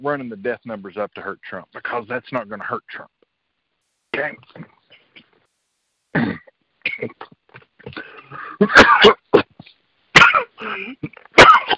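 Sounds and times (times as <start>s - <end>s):
speech: 0.0s - 3.2s, 4.1s - 4.8s, 6.1s - 9.2s, 10.6s - 11.3s
harsh coughing: 6.1s - 9.6s, 10.2s - 11.7s
throat clearing: 6.1s - 9.6s, 10.2s - 11.7s.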